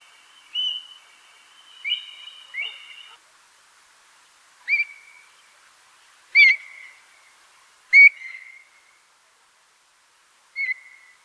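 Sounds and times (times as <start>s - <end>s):
Stone curlew Burhinus oedicnemus calling: 0.4s - 3.2s, 4.6s - 5.3s, 6.4s - 7.0s, 7.9s - 8.7s, 10.6s - 11.2s.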